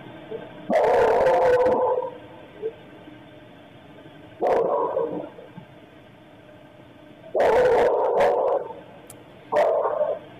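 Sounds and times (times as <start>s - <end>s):
dog barking violently: 0.7s - 2.0s, 4.4s - 5.1s, 7.3s - 8.7s, 9.5s - 10.2s.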